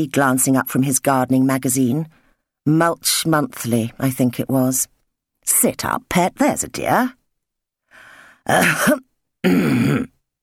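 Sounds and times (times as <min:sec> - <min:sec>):
speech: 0:00.0 - 0:07.2, 0:08.5 - 0:10.2
person clearing throat with polite coughs: 0:08.5 - 0:10.2.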